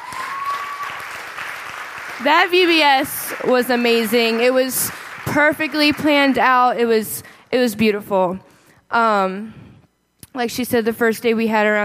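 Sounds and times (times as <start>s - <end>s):
crowd clapping: 0.0s - 6.6s
speech: 2.2s - 9.6s, 10.4s - 11.8s.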